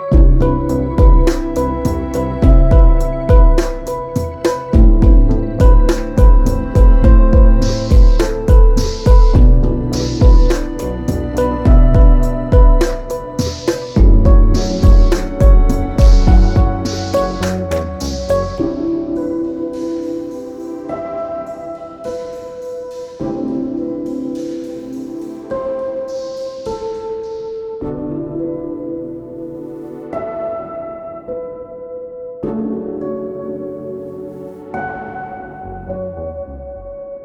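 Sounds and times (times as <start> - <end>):
pan drum: 0.1 - 18.7.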